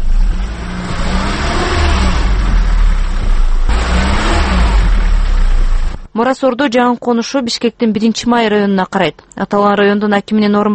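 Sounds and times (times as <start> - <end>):
car engine revving while stuck in mud on a dirt road after rain: 0.0 - 6.1
speech: 6.2 - 10.7.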